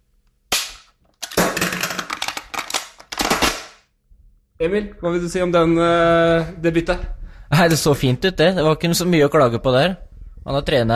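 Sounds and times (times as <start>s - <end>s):
rifle magazine being swapped with metallic clicks: 0.7s - 3.7s
speech: 4.6s - 10.9s.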